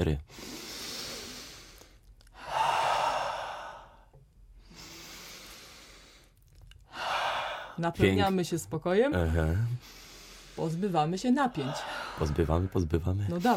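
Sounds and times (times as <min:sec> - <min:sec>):
speech: 0:00.0 - 0:00.5, 0:07.8 - 0:10.0, 0:10.6 - 0:13.5
several people breathing deeply in a breathing exercise: 0:00.3 - 0:07.8, 0:09.8 - 0:10.8, 0:11.5 - 0:13.5.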